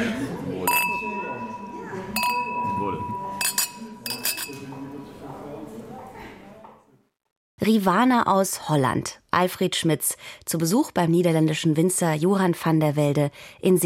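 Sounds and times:
people chatting: 0.0s - 6.8s, 7.6s - 13.8s
glasses of Rivaner white wine clinking in a toast at a Dutch winery: 0.6s - 5.0s
speech: 7.6s - 13.8s.

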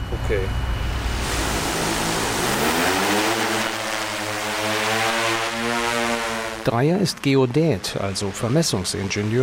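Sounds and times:
speech: 0.3s - 0.7s, 6.6s - 9.4s
six-rotor hexacopter drone taking off over a maize field: 0.5s - 7.2s.

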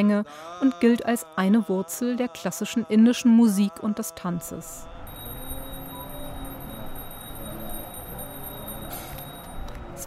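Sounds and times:
speech: 0.0s - 4.9s
temple bell struck for morning arti worship at a monastery: 5.0s - 10.0s.

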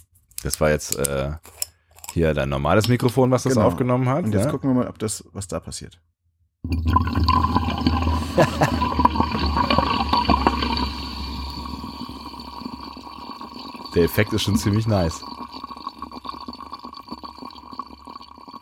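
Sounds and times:
speech: 0.4s - 1.5s, 2.1s - 7.0s, 8.4s - 8.9s, 14.0s - 15.4s
sparkling natural mineral water fizzing: 6.8s - 18.6s
laughter: 8.2s - 9.8s.

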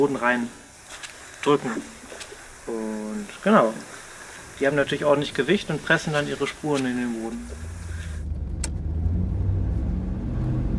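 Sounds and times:
speech: 0.0s - 0.6s, 1.4s - 2.0s, 2.6s - 4.0s, 4.6s - 7.7s
car road noise: 0.0s - 10.7s
car engine rumble: 6.5s - 10.7s.

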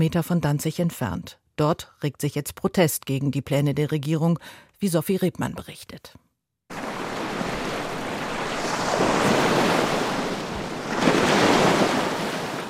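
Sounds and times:
speech: 0.0s - 6.3s
soft wind: 6.7s - 12.6s
waves breaking on a sandy beach: 6.7s - 12.6s.

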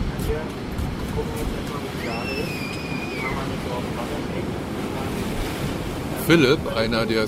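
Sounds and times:
gusting wind on a beach: 0.0s - 7.2s
surf roaring on a beach: 0.0s - 7.2s
high gliding whistle-like call: 2.0s - 3.5s
speech: 6.3s - 7.2s.

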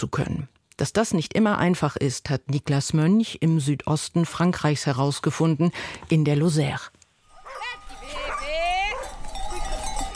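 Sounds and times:
speech: 0.0s - 7.0s
sheep bells clanking in a moving flock: 7.2s - 10.1s
shuffling of a flock of sheep being driven: 7.2s - 10.1s.

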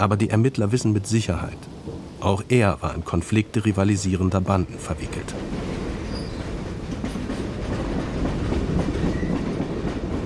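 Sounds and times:
speech: 0.0s - 5.6s
train travelling to Borlänge Sweden rolling on rails heard from inside: 0.0s - 10.2s
faint rhythmic clatter of train on rails: 3.1s - 10.2s.

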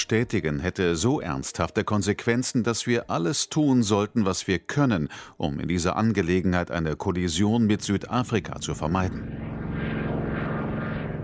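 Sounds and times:
speech: 0.0s - 9.7s
airplane engine drone with propeller hum: 7.8s - 11.2s.

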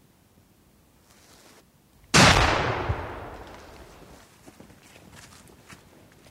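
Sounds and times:
rifle shot echoing over a forest at night: 2.1s - 4.2s.

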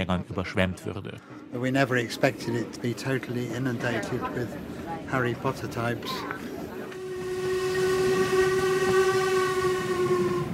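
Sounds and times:
speech: 0.0s - 6.4s
rumble of steam train crossing a viaduct: 1.6s - 10.5s
steam locomotive whistle on a viaduct: 6.9s - 10.5s.

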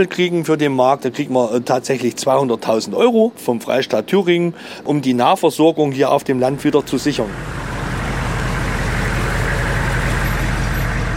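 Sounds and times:
speech: 0.0s - 7.8s
heavy truck engine rumbling while maneuvering slowly outside a hall: 6.1s - 11.1s.

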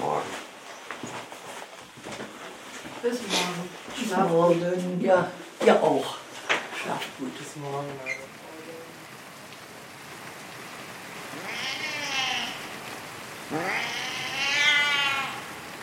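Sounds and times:
steady hiss of pouring rain: 0.0s - 15.8s
speech: 3.0s - 6.2s, 6.8s - 8.2s, 13.5s - 13.9s
cat yowling loudly outdoors in a residential area in Basel: 11.3s - 12.8s, 13.5s - 15.6s.

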